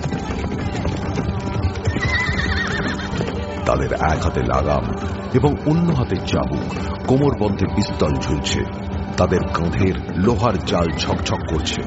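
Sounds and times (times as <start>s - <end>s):
police horses neighing: 0.0s - 5.8s
large police horses galloping at speed: 0.0s - 11.8s
speech: 3.7s - 11.8s.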